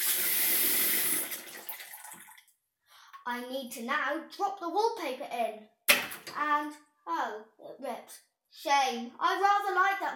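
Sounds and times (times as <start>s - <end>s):
water running from a tap: 0.0s - 2.5s
water drips and trickles into a bowl: 1.0s - 2.6s
speech: 3.3s - 10.1s.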